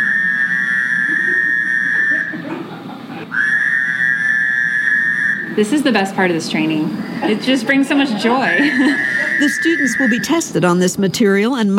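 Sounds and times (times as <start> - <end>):
Fowler's toad nasal buzzy call: 0.0 - 2.5, 3.3 - 5.6, 8.9 - 10.4
laughter: 1.0 - 3.4, 7.0 - 10.4
speech: 5.6 - 11.7.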